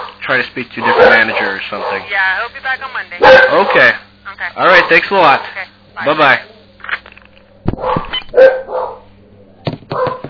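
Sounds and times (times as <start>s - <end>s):
dogs barking: 0.0s - 2.1s, 3.2s - 4.0s, 4.6s - 5.6s, 7.7s - 9.1s, 9.9s - 10.2s
speech: 0.3s - 6.5s.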